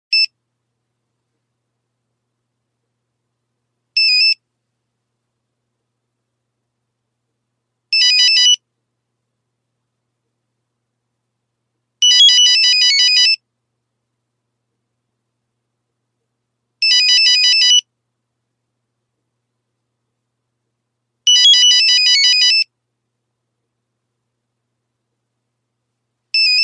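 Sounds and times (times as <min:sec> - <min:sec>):
Nokia phone ringtone: 0:04.0 - 0:04.4, 0:08.0 - 0:08.6, 0:12.0 - 0:13.4, 0:16.8 - 0:17.8, 0:21.3 - 0:22.7, 0:26.4 - 0:26.6.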